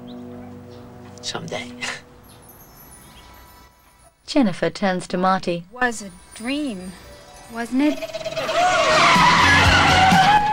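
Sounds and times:
speech: 1.2 - 2.0, 4.3 - 9.0
red truck tyres screeching as it pulls up: 7.2 - 10.5
red truck engine roar: 8.4 - 10.5.

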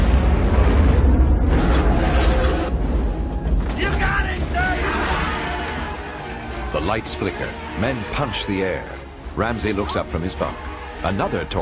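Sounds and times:
torpedo detonating beneath a submarine and the submarine exploding: 0.0 - 5.4
speech: 6.9 - 11.5.

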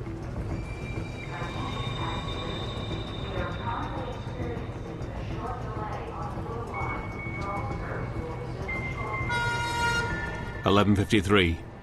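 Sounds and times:
subway train rumbling into a station: 0.0 - 10.8
loud harmonic subway train horn blast: 9.3 - 10.4.

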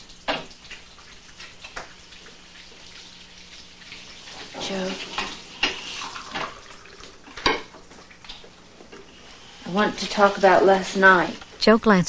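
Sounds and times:
coffee pouring into cups: 0.0 - 11.6
speech: 4.7 - 5.3, 9.7 - 12.0
soft clinks and taps of dishes in a quiet kitchen: 7.3 - 7.8.

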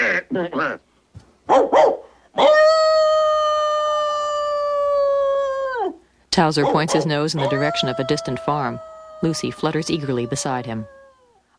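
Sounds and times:
speech: 0.4 - 0.9, 6.4 - 11.0
dog barking and howling: 1.5 - 11.4.

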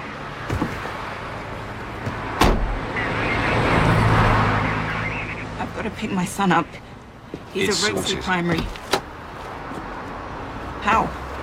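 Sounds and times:
police car engine and road rumble: 0.0 - 11.4
police car doors shutting: 2.0 - 2.8
speech: 6.0 - 6.9, 7.6 - 8.8.

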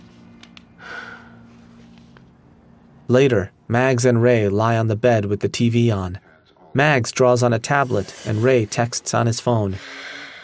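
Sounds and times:
woman taking a deep breath: 0.8 - 1.7, 9.8 - 10.4
speech: 3.1 - 10.4.

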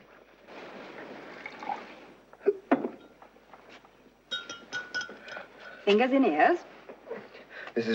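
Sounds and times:
water pouring into a glass: 1.3 - 2.1
glass clinks: 2.9 - 3.3, 4.3 - 5.5
speech: 5.9 - 6.7, 7.8 - 7.9.

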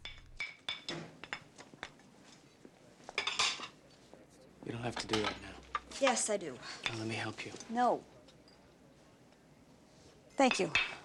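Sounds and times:
plates and cutlery clinking while dishes are washed: 0.0 - 3.8, 4.8 - 8.8
speech: 4.6 - 8.2, 10.4 - 10.9.

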